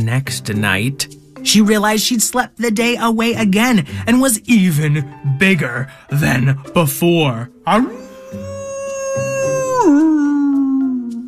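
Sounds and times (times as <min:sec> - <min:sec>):
speech: 0:00.0 - 0:08.4
great big wolf howling: 0:07.8 - 0:11.2.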